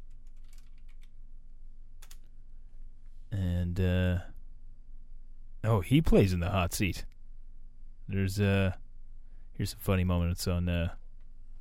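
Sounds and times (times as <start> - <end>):
typing on a computer keyboard: 0.0 - 1.1, 2.0 - 2.3
speech: 3.8 - 4.3, 5.6 - 7.1, 8.1 - 8.8, 9.6 - 11.0.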